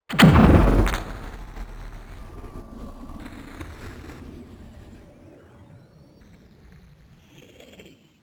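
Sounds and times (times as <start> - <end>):
digital UFO futuristic vehicle accelerating: 0.1 - 3.6.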